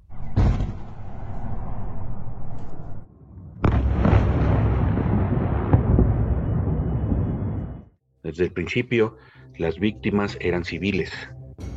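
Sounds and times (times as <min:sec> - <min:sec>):
heavy bombing explosions with long rumble: 0:00.0 - 0:07.9
speech: 0:08.3 - 0:11.4.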